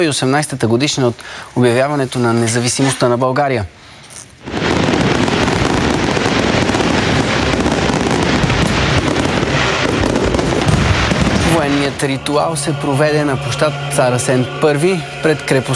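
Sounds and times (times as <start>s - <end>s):
speech: 0.0s - 3.8s, 12.0s - 15.7s
ceremonial fireworks salute on Tsar Asen I Square in Veliko Tarnovo Bulgaria: 4.3s - 15.7s.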